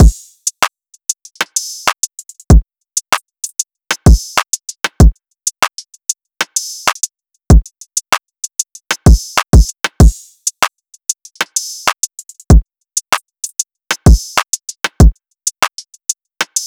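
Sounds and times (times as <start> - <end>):
drum loop at 96 BPM: 0.0 - 0.2, 3.9 - 5.8, 6.5 - 8.2, 8.9 - 10.2, 11.4 - 15.8.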